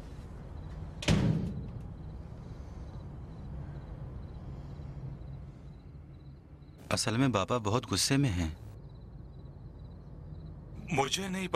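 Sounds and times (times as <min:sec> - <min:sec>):
solid door shutting with a loud thud: 0:01.0 - 0:02.0
speech: 0:06.9 - 0:08.6, 0:10.9 - 0:11.5.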